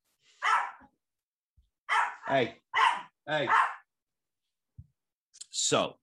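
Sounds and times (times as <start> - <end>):
dog barking indoors: 0.4 - 0.9, 1.9 - 3.9
speech: 2.3 - 2.6, 3.3 - 3.7, 5.6 - 6.0.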